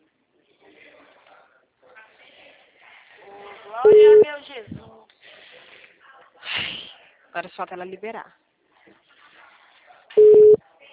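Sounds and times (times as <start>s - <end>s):
telephone ringback tone during an outgoing call: 3.9s - 4.2s, 10.2s - 10.6s
speech: 7.4s - 8.4s.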